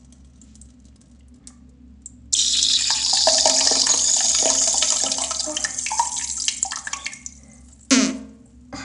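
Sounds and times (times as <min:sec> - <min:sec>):
urine stream splashing into toilet water: 0:02.3 - 0:07.5
low fart-like burst: 0:07.9 - 0:08.3.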